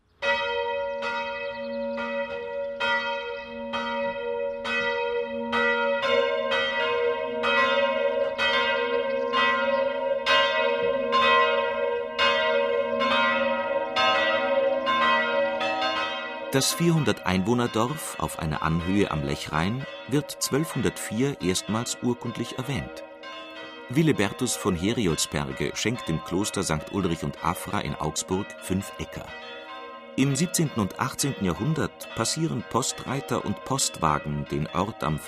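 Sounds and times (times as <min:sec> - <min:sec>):
church bells in Hörmannsberg Swabia Bavaria ringing a midday peal: 0:00.0 - 0:35.2
speech: 0:16.6 - 0:23.1, 0:23.9 - 0:29.6, 0:30.2 - 0:35.2.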